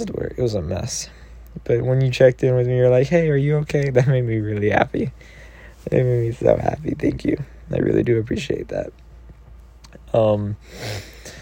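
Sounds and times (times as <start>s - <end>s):
speech: 0.0s - 9.0s, 10.1s - 11.1s
breathy sniff through a congested runny nose: 10.7s - 11.4s.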